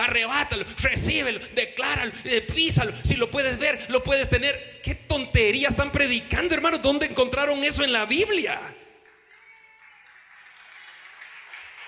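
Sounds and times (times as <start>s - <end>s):
speech: 0.1s - 8.8s
audience applauding in a large room: 9.0s - 11.8s.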